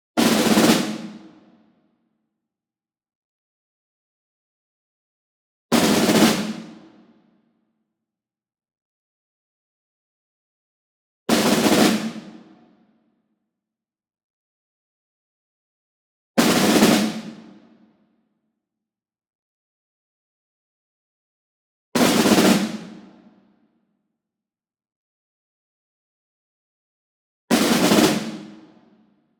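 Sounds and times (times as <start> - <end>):
ensemble snare drum group roll: 0.2 - 1.5, 5.7 - 6.9, 11.3 - 12.6, 16.4 - 17.6, 22.0 - 23.2, 27.5 - 28.7.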